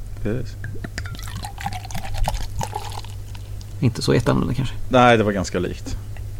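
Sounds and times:
speech: 0:00.2 - 0:01.1, 0:03.8 - 0:06.0
beer glugging and splashing as poured into a tin mug: 0:01.0 - 0:03.8.

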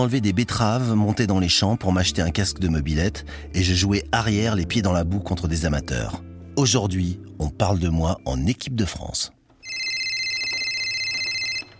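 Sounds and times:
speech: 0:00.0 - 0:09.4
telephone ringing with electronic trill: 0:09.6 - 0:11.7.

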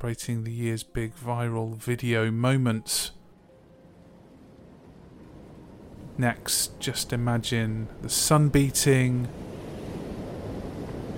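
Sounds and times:
speech: 0:00.0 - 0:03.2, 0:06.2 - 0:09.5
faint breezy hiss: 0:00.0 - 0:11.1
gentle ocean waves lapping: 0:03.3 - 0:11.1.

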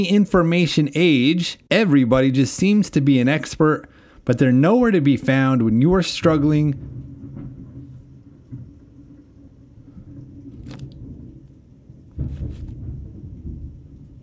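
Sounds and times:
speech: 0:00.0 - 0:07.0
deep heavy rumble of thunder: 0:00.0 - 0:14.2
loud sharp crash of thunder: 0:03.5 - 0:14.2.

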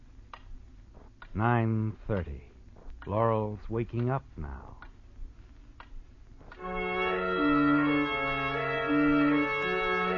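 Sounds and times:
low steady hum: 0:00.0 - 0:10.1
clock ticking: 0:00.3 - 0:02.4, 0:03.0 - 0:05.0
speech: 0:01.4 - 0:04.8.

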